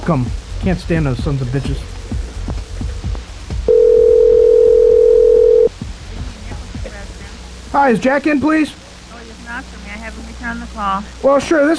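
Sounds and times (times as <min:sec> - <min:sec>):
speech: 0:00.1 - 0:02.2, 0:07.7 - 0:08.8, 0:10.8 - 0:11.7
telephone dial tone: 0:03.7 - 0:05.7.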